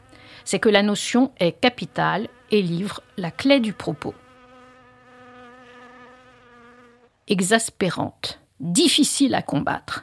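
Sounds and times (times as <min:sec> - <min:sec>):
fly buzzing: 0:00.0 - 0:07.4
speech: 0:00.4 - 0:04.2, 0:07.3 - 0:10.0.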